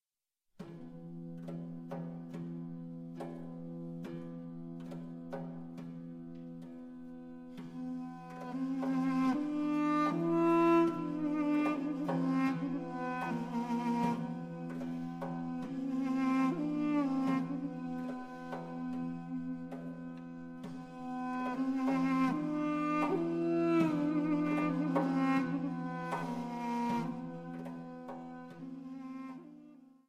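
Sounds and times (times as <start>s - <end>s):
duduki instrumental music: 0.6s - 30.0s.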